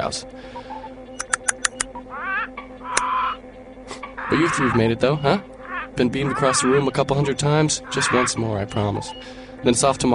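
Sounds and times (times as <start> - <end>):
speech: 0.0 - 0.6, 4.3 - 10.1
steady low hum: 0.0 - 10.1
parrots squawking: 1.9 - 5.0, 5.6 - 9.3.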